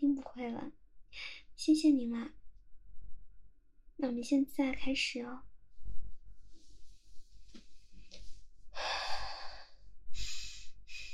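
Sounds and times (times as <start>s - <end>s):
speech: 0.1s - 2.4s, 4.0s - 5.5s
person short of breath breathing deeply: 8.7s - 11.1s.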